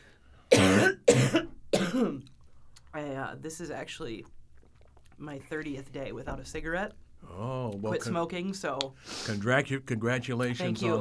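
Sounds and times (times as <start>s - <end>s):
coughing and throat clearing from a throat tickle after quitting smoking: 0.5s - 2.3s
speech: 2.0s - 2.3s, 2.9s - 4.4s, 5.2s - 11.0s.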